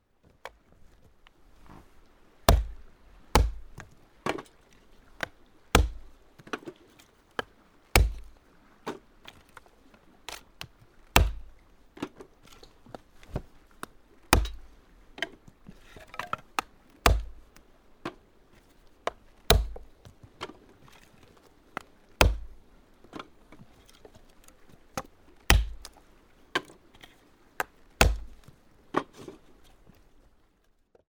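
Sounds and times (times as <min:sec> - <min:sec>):
chopping kindling: 0:02.5 - 0:04.6, 0:05.2 - 0:06.7, 0:08.0 - 0:08.3, 0:11.2 - 0:11.5, 0:14.3 - 0:14.6, 0:15.2 - 0:18.2, 0:19.1 - 0:19.9, 0:22.2 - 0:22.6, 0:25.0 - 0:25.9, 0:27.6 - 0:28.4.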